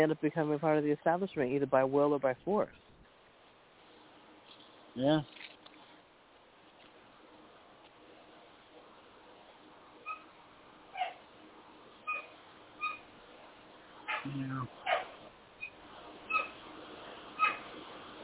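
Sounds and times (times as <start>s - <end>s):
speech: 0.0s - 2.9s, 5.0s - 5.4s, 14.4s - 14.9s
four-month-old female Doberman puppy yelping and whimpering: 12.1s - 13.0s, 14.9s - 16.6s, 17.4s - 17.6s
Doberman puppy gruff bark-like burst: 14.1s - 15.2s, 17.4s - 17.7s.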